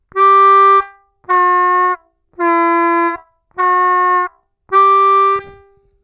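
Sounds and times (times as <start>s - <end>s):
staccato harmonica playing with bends: 0.1s - 5.9s.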